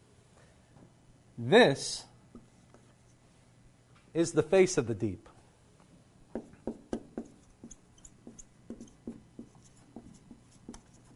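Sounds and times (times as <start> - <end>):
speech: 1.4 - 2.1, 4.2 - 5.3
pencil strokes drawing a chair by hand: 7.2 - 11.1.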